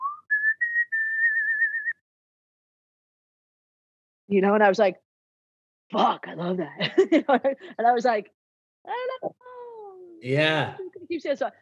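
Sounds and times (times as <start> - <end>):
person whistling a short melody: 0.0 - 2.0
speech: 4.3 - 5.0, 5.9 - 9.4, 10.2 - 11.6
laughter: 10.3 - 10.7.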